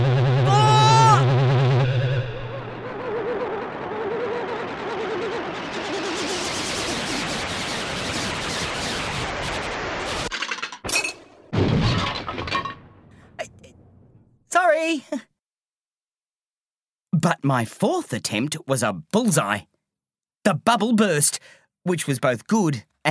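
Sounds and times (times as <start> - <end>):
warbling electronic tone: 0.0 - 10.3
short sharp bursts of debris: 5.6 - 14.2
windscreen glass smashing: 10.8 - 13.1
speech: 17.4 - 19.7, 20.4 - 23.1.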